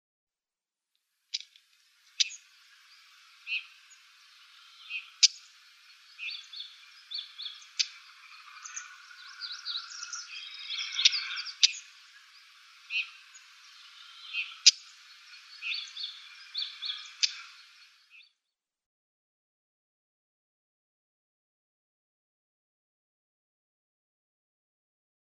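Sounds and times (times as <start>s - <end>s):
Siberian Stonechat calls: 1.3s - 18.3s.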